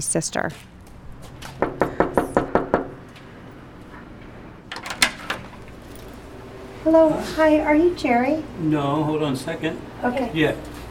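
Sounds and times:
speech: 0.0 - 0.8, 6.8 - 10.7
firm knocking on a door: 1.6 - 3.0.

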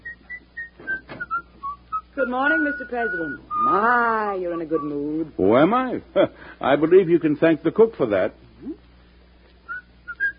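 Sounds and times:
person whistling a tune: 0.0 - 3.8, 4.4 - 5.2, 9.7 - 10.3
speech: 2.2 - 8.8.

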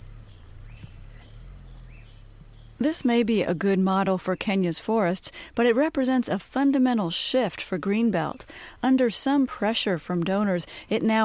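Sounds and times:
low hum: 0.0 - 4.4
African cricket chirping: 0.0 - 11.2
speech: 2.8 - 11.2.

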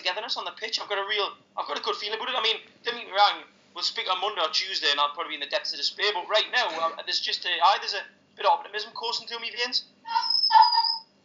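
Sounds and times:
speech: 0.0 - 10.7
dog whining with a high thin cry: 10.1 - 11.0.

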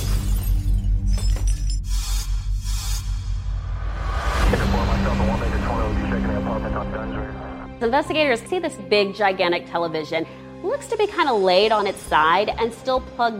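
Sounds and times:
glass shattering: 0.0 - 2.2
scattering tinkling glass shards: 0.0 - 2.2
steady low rumble: 2.6 - 7.8
speech: 7.8 - 13.3.

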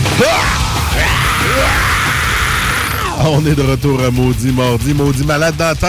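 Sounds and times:
man yelling loudly into microphone: 0.1 - 3.4
laughter: 0.2 - 4.2
speech: 3.3 - 5.8.

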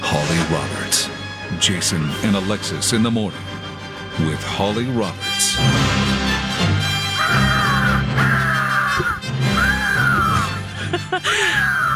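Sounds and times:
speech: 0.1 - 6.0, 11.1 - 11.9
eagle screeching: 7.1 - 10.6
laughter: 7.2 - 11.9.

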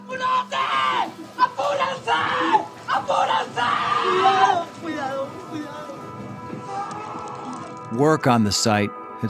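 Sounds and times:
family members sobbing and screaming at rubble of a collapsed building: 0.0 - 7.9
wind noise: 1.2 - 8.3
speech: 8.0 - 9.2.

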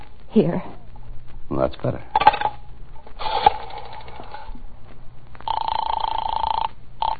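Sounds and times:
speech: 0.4 - 0.7, 1.6 - 2.2
steady telephone tone: 5.4 - 7.1.

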